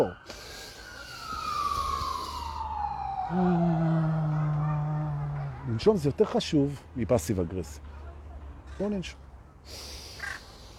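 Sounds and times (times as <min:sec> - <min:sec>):
speech: 0:00.0 - 0:00.4, 0:03.3 - 0:03.8, 0:05.8 - 0:07.9, 0:08.8 - 0:10.0
siren wailing: 0:00.0 - 0:05.7
low rumble of traffic: 0:00.0 - 0:10.7.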